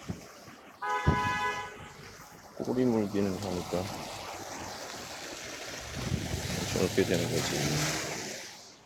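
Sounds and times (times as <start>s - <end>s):
low rumble of street traffic: 0.0s - 8.8s
car horn honking in traffic: 0.8s - 2.0s
speech: 2.6s - 4.1s, 6.8s - 8.0s.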